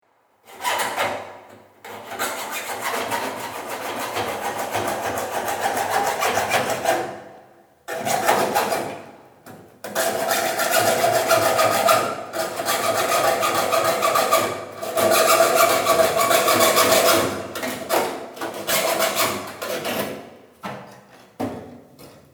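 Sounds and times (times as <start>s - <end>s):
saw: 0.4s - 1.3s, 1.9s - 7.2s, 7.9s - 9.0s, 9.9s - 20.1s.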